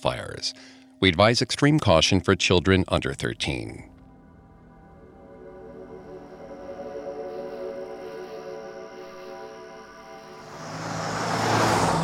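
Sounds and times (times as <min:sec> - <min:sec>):
speech: 0:00.0 - 0:03.9
louder vehicle rushing by with a broad whooshing hiss: 0:10.3 - 0:12.0
car driving in heavy highway traffic on the 101 leaving Los Angeles: 0:10.4 - 0:12.0.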